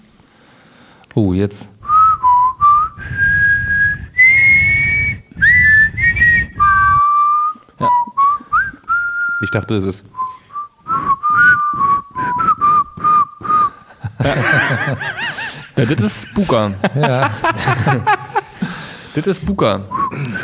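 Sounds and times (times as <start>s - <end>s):
speech: 1.2s - 1.7s, 9.4s - 10.1s, 14.2s - 18.2s, 19.2s - 20.3s
person whistling a TV series theme tune: 1.8s - 13.8s, 19.9s - 20.4s
laughter: 13.9s - 18.9s.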